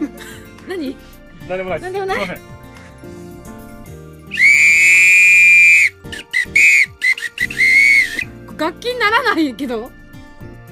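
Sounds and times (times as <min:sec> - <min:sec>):
speech: 0:00.7 - 0:03.3, 0:08.6 - 0:10.0
shrill whistle blasts: 0:04.3 - 0:08.3.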